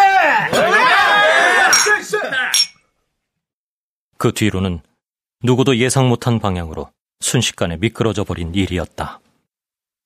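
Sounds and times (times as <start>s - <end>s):
small group cheering and laughing: 0.4s - 2.5s
glasses clinking in a toast: 1.7s - 2.8s
speech: 4.2s - 9.2s.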